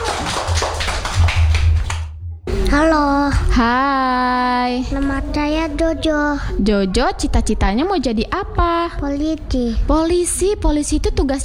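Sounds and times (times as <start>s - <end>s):
children applauding a classmate during a class activity: 0.0s - 2.1s
speech: 2.8s - 11.4s.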